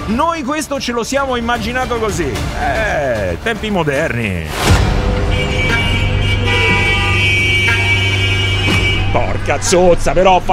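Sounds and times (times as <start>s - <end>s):
speech: 0.1s - 5.6s, 9.1s - 10.5s
car horns honking in a stalled morning traffic jam: 4.8s - 9.7s.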